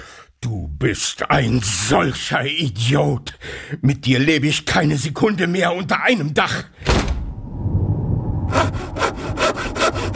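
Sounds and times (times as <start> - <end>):
speech: 0.4 - 6.8
low rumbling: 7.0 - 10.1
hand saw sawing a roof into two parts: 8.5 - 10.1.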